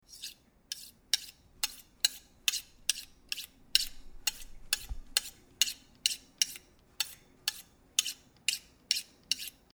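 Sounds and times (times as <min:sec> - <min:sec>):
knife: 0:00.0 - 0:09.7.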